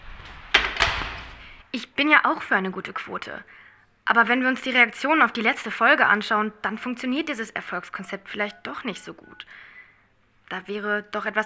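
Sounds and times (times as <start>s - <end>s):
door shutting with a thud: 0.0s - 1.6s
door latch clunk: 0.2s - 1.4s
speech: 1.7s - 9.7s, 10.5s - 11.4s.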